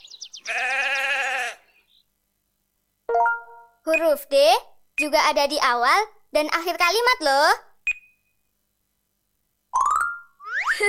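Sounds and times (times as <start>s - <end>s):
sheep bleating: 0.4s - 1.7s
speech: 0.5s - 0.8s, 3.9s - 7.7s
high chirpy sounds: 3.1s - 4.3s, 9.7s - 10.8s.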